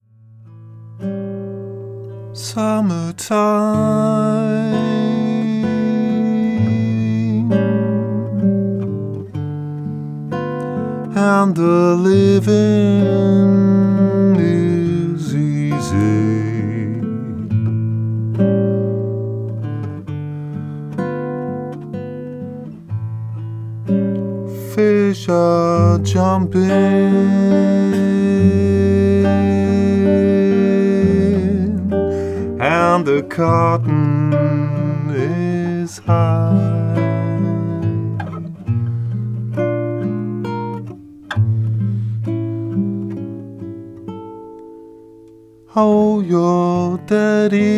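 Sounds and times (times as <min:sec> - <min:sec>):
guitar: 0:00.0 - 0:47.7
person singing: 0:02.4 - 0:09.0, 0:11.1 - 0:17.6, 0:24.6 - 0:38.5, 0:45.7 - 0:47.7.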